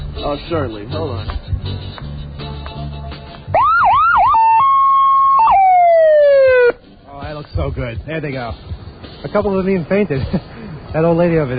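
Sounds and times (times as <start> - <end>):
speech: 0.2 - 1.9, 7.6 - 11.5
siren whooping in rising sweeps and wailing: 3.6 - 6.8.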